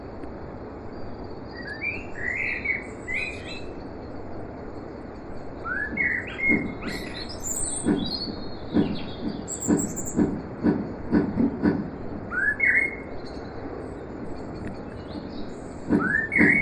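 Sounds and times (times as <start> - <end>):
blackbird singing short fluty warbles: 1.5 - 3.9, 5.6 - 10.3, 12.3 - 13.6, 14.4 - 16.6
dull knocks or clicks: 6.4 - 12.2, 15.9 - 16.6.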